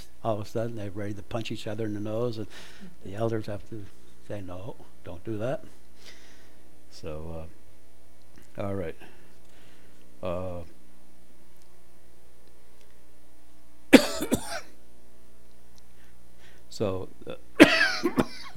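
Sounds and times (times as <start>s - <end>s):
speech: 0.2s - 6.2s, 6.9s - 7.6s, 8.6s - 9.2s, 10.2s - 10.8s, 14.2s - 14.7s, 16.7s - 18.5s
person coughing harshly and dryly: 14.0s - 14.8s, 17.6s - 18.5s.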